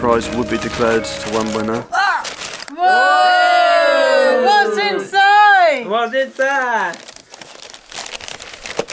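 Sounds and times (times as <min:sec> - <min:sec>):
speech: 0:00.0 - 0:03.6, 0:04.4 - 0:07.0
wrapping paper crinkling around a tissue box in a game of pass the parcel: 0:00.2 - 0:02.8, 0:06.0 - 0:08.9.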